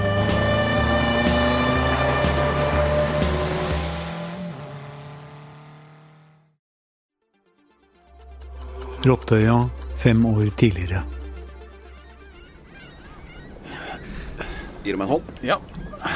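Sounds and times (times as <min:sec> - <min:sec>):
car engine droning: 0:00.0 - 0:06.6
speech: 0:09.0 - 0:11.2, 0:14.8 - 0:16.1.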